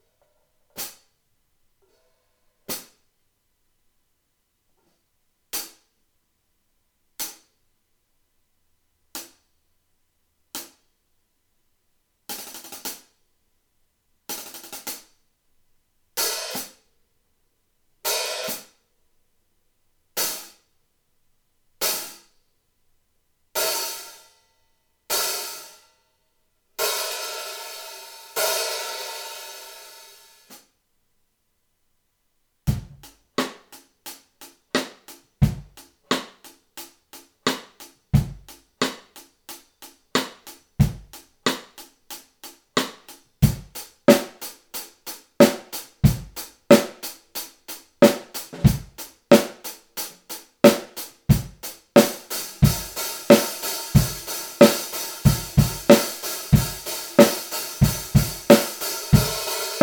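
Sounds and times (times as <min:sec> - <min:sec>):
antique 14 hi-hat cymbals: 0:16.2 - 0:16.9, 0:18.1 - 0:18.8, 0:20.2 - 0:20.7, 0:21.8 - 0:22.4, 0:23.6 - 0:24.5, 0:26.8 - 0:30.7, 0:32.7 - 0:59.8.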